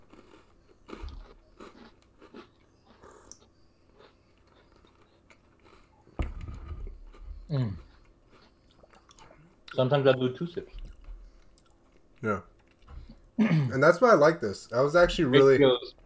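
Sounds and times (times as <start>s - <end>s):
crunchy biting and chewing of an Oreo cookie: 0.0s - 9.4s
speech: 7.5s - 7.8s, 9.8s - 10.8s, 12.2s - 12.5s, 13.7s - 16.0s.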